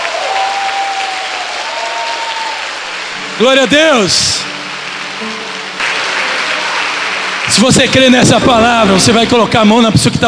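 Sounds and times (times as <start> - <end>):
congregation applauding: 0.0 - 10.0
speech: 3.4 - 4.5, 7.5 - 10.2.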